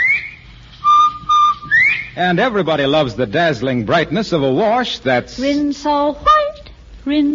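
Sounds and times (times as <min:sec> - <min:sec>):
whistled call in the style of a bobwhite quail: 0:00.0 - 0:02.2
speech: 0:02.2 - 0:06.4, 0:07.0 - 0:07.3.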